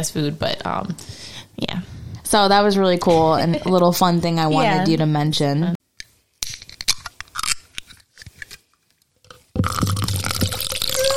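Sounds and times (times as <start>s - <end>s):
speech: 0.0s - 5.8s
wet slurps sipping craft beer: 9.6s - 11.1s
fizzing craft beer liquid rush: 9.7s - 11.1s.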